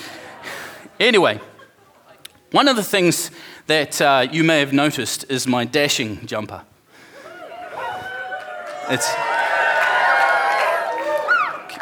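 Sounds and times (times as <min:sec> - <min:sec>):
speech: 0:01.0 - 0:01.5, 0:02.5 - 0:06.7, 0:08.9 - 0:09.3
audience of many voices cheering and shouting: 0:07.2 - 0:11.7.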